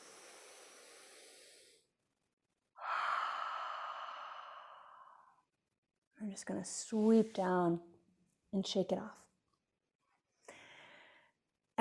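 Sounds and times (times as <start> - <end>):
slow deep breath during a chakra breathing exercise: 0.0 - 1.9, 2.8 - 5.4, 10.5 - 11.3
speech: 6.2 - 7.9, 8.5 - 9.2.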